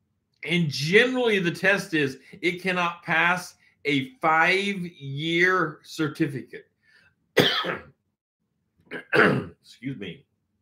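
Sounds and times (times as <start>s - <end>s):
speech: 0.4s - 6.7s, 7.4s - 7.9s, 8.9s - 10.3s
man coughing and clearing his throat: 7.4s - 7.9s, 8.9s - 9.6s.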